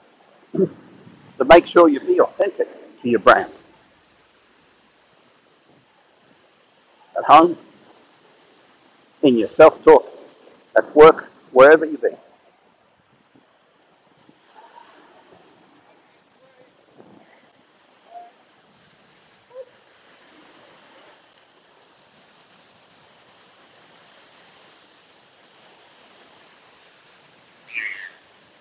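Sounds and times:
steady wash of surf on a cold morning: 0.0 - 28.5
speech: 0.6 - 0.8, 1.4 - 3.6, 7.3 - 7.7, 9.2 - 10.1, 10.8 - 12.2
seagulls calling on a cold morning: 27.6 - 28.2.

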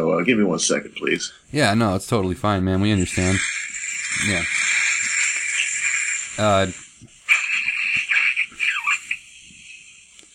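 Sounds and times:
speech: 0.0 - 3.6, 4.2 - 4.6, 6.4 - 6.8
bubbling gurgle with airy hiss of a dab hit: 3.0 - 8.5.

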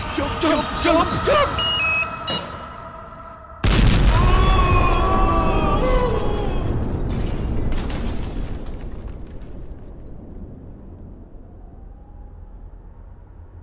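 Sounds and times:
speech: 0.2 - 1.7
explosion blowing open a hatch: 3.6 - 11.5.

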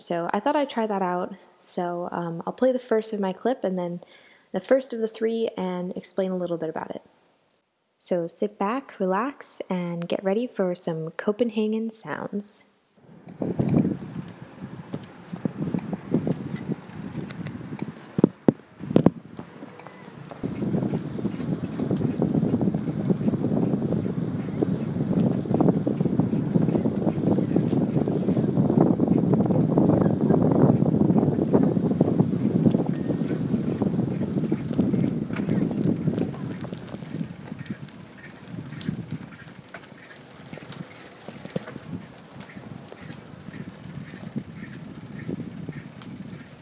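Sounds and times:
speech: 0.0 - 7.2, 8.0 - 12.7, 13.3 - 13.8
wind buffeting during a bicycle ride: 13.0 - 46.6
bicycle rolling rumble on Copenhagen streets: 13.3 - 46.6.

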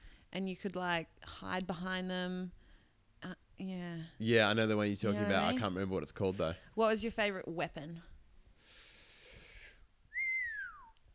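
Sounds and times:
speech: 0.3 - 2.6, 3.2 - 8.1
breathy rushing exhale: 8.6 - 9.8
person whistling a clear downward-sliding tone: 10.1 - 11.0.

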